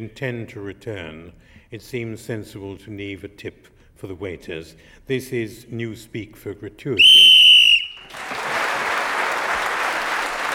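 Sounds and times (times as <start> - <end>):
speech: 0.0 - 7.2
short shrill whistle blast ending a game round: 7.0 - 8.1
audience applause: 8.0 - 10.5.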